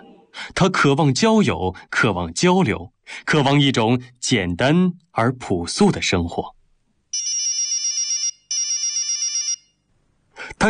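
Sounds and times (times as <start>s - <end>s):
speech: 0.6s - 6.6s
mobile phone ringing with trilling electronic tone: 7.2s - 9.8s.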